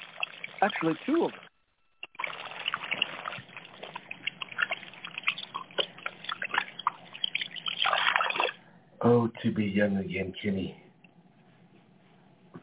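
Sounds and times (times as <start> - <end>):
water trickling from a small indoor fountain: 0.0 - 8.6
speech: 0.6 - 1.5, 9.0 - 10.8.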